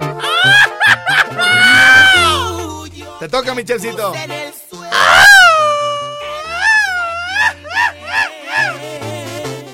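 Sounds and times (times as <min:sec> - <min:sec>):
laughter: 0:00.2 - 0:02.4, 0:05.5 - 0:08.8
man's loud piercing high-pitched scream with warbling yelps: 0:01.3 - 0:02.5, 0:04.9 - 0:08.8
speech: 0:03.2 - 0:05.2.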